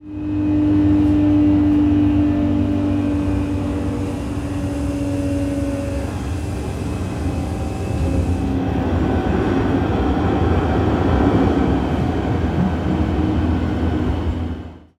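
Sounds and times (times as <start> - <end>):
metro train moving slowly, heard from interior: 0.0 - 14.9.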